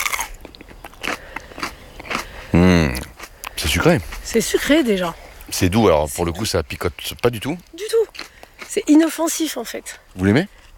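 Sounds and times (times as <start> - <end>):
person biting into a crisp fresh chili pepper: 0.0 - 4.3, 7.8 - 8.9
chewing crackles of chili pepper: 0.0 - 5.5, 6.2 - 9.2
speech: 3.8 - 8.0, 8.7 - 10.6.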